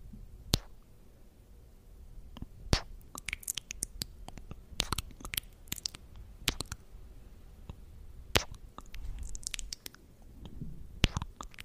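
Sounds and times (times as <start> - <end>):
little kisses with sharp wet smacks and pops: 0.5 - 0.8, 2.4 - 6.8, 8.4 - 10.0, 11.0 - 11.6
soft squishy mouth noises: 2.4 - 6.8, 8.3 - 10.0, 11.0 - 11.6.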